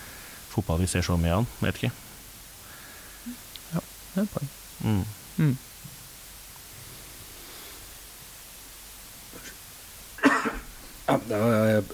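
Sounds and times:
speech: 0.6s - 2.0s, 3.2s - 5.7s, 11.1s - 11.9s
person coughing from a summer cold: 10.2s - 11.2s.

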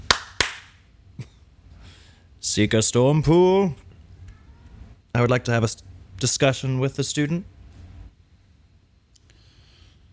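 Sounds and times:
hand claps: 0.0s - 0.8s
speech: 2.6s - 3.8s, 5.2s - 7.6s.

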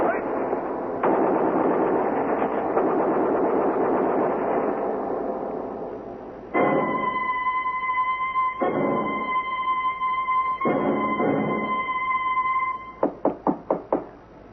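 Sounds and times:
steady electrical hum: 0.0s - 14.5s
sharp knocks on a door: 13.0s - 14.2s.

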